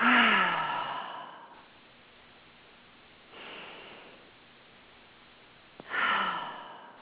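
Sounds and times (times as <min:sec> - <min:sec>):
deep breathing during a guided relaxation exercise: 0:00.0 - 0:01.7, 0:03.3 - 0:04.3, 0:05.8 - 0:07.0.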